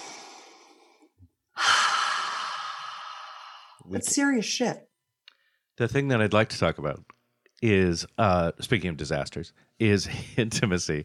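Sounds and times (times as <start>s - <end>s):
person exhaling long and breathy: 0.0s - 3.9s
person inhaling deeply: 0.0s - 3.9s
speech: 3.9s - 4.9s, 5.8s - 11.0s.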